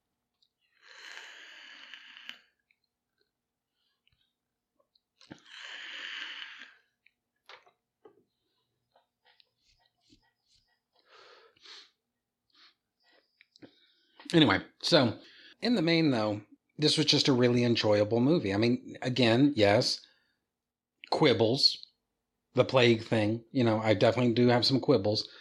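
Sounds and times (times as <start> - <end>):
drawn-in inhale from a vape: 0.8 - 2.5, 5.3 - 6.9
speech: 14.3 - 20.1, 21.1 - 21.9, 22.6 - 25.3.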